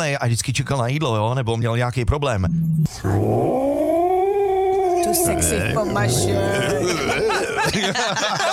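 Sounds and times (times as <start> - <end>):
speech: 0.0 - 3.8, 5.1 - 8.5
person imitating an angry cat yowling and growling: 3.0 - 7.7
laughter: 6.3 - 8.5.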